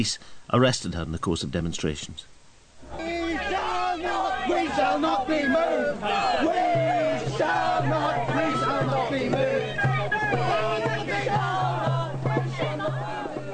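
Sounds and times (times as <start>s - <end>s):
speech: 0.0s - 2.4s
dense protest crowd cheering and shouting: 2.8s - 13.5s.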